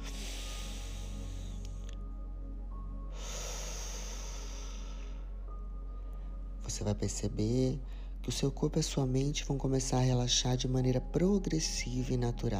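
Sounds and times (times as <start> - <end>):
slow deep breathing during a guided relaxation for sleep: 0.0 - 6.6, 7.8 - 8.2
steady sustained musical drone: 0.0 - 12.5
speech: 6.7 - 12.5.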